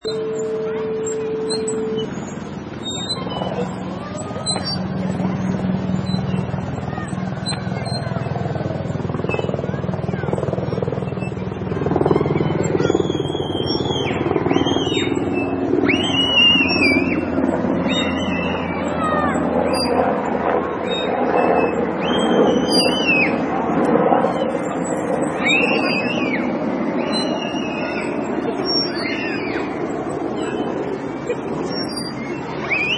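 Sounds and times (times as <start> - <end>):
helicopter over a playground: 0.0 - 32.9.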